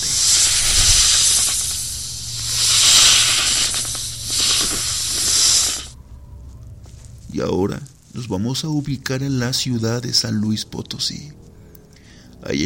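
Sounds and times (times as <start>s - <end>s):
snake hissing sound effect: 0.0s - 6.0s
faint low hum: 0.0s - 12.6s
speech: 7.4s - 11.5s, 12.4s - 12.6s.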